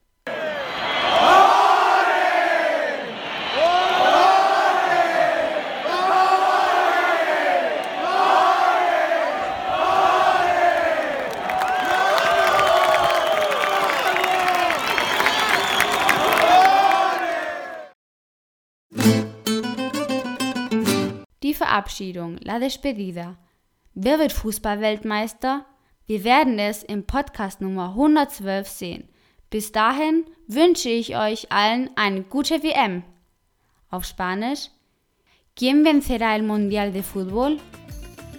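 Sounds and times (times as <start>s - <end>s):
cheering: 0.3s - 18.0s
large crowd chanting olé: 0.3s - 18.0s
clapping: 10.5s - 17.9s
music: 18.9s - 21.3s, 36.6s - 38.3s
speech: 21.9s - 23.4s, 24.0s - 33.1s, 33.9s - 34.8s, 35.6s - 37.9s.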